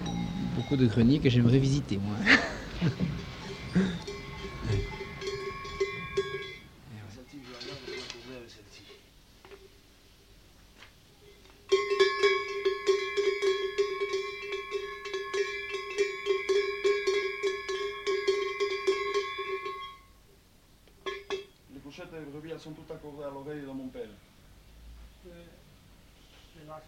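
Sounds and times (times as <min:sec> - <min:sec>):
tuned sheep and cow bells being shaken: 0:00.0 - 0:01.4, 0:02.3 - 0:06.8, 0:11.7 - 0:20.2
speech: 0:00.6 - 0:04.9
laughter: 0:02.2 - 0:05.0.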